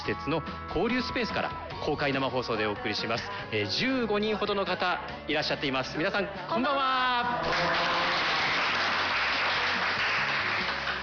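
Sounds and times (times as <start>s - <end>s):
speech: 0.1s - 8.1s
small audience applauding: 7.4s - 11.0s.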